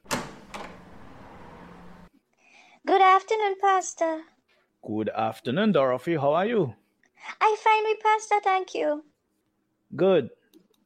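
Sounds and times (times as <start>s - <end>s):
door opening clunks as a visitor comes in: 0.0s - 2.1s
speech: 3.2s - 9.1s, 9.9s - 10.4s.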